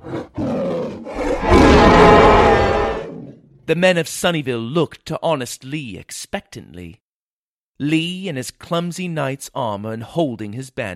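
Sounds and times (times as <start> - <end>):
giant adult dragon roaring at a village: 0.0 - 3.6
dragon guttural growls: 0.0 - 3.7
speech: 3.7 - 7.0, 7.8 - 10.9.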